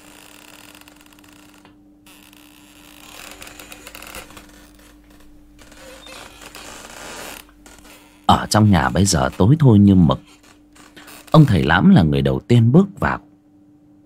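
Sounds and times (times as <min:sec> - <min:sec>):
unlatched wooden door creaking as it is pushed open: 0:00.0 - 0:11.7
low steady hum: 0:00.0 - 0:14.0
speech: 0:08.3 - 0:10.4, 0:11.4 - 0:13.3.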